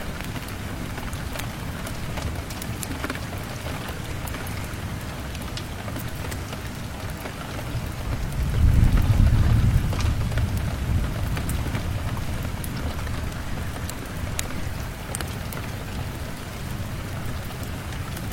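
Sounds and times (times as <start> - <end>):
heavy rain falling outside: 0.0 - 18.3
low rumbling gust of wind: 8.2 - 12.6.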